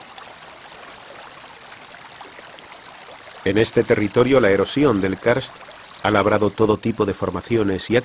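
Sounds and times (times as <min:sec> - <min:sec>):
mountain river rushing through a limestone gorge: 0:00.0 - 0:06.2
speech: 0:03.4 - 0:08.0.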